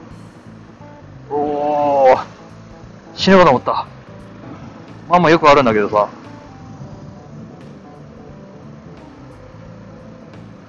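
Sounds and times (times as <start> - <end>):
bus passing close by: 0.0 - 10.6
speech: 3.2 - 3.9, 5.1 - 6.2.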